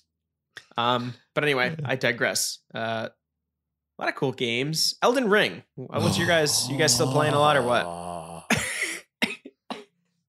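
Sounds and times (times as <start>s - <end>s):
speech: 0.8s - 3.2s, 4.0s - 8.2s
person coughing harshly: 7.2s - 10.0s.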